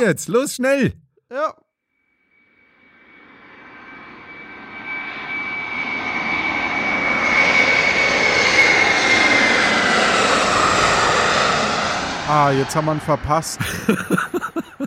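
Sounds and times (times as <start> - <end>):
speech: 0.0 - 1.6, 12.3 - 14.8
airplane flying past: 2.3 - 13.9
laughter: 13.6 - 14.8.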